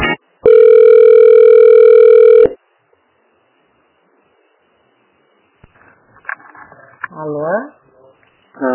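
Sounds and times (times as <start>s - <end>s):
faint noise: 0.2s - 8.7s
telephone line tone while a call to a municipal office is transferred: 0.4s - 2.6s.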